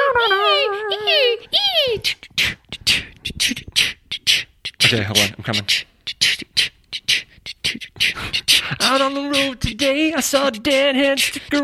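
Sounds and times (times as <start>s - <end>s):
voice squawking shrill calls imitating seagulls: 0.0s - 2.2s, 2.8s - 7.2s
speech: 4.9s - 6.0s, 8.8s - 11.6s.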